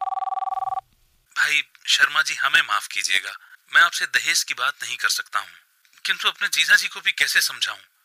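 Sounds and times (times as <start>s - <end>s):
telephone ringing with a trilling electronic bell: 0.0s - 0.8s
faint noise: 0.6s - 8.0s
speech: 1.9s - 8.0s.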